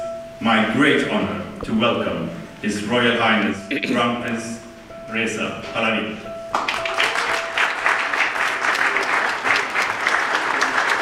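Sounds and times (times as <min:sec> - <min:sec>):
speech: 0:00.4 - 0:06.8
members of the Swedish parliament applauding: 0:06.5 - 0:11.0.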